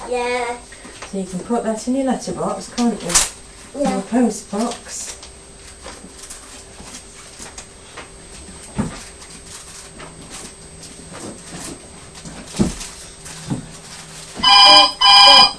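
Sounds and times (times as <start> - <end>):
speech: 0.1 - 5.2
telephone ringing: 14.4 - 15.5.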